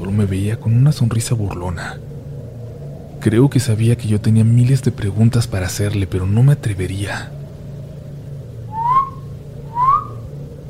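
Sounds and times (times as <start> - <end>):
steady low hum: 0.0 - 10.6
speech: 0.2 - 2.1, 3.2 - 7.4
person whistling rising notes: 8.7 - 10.2.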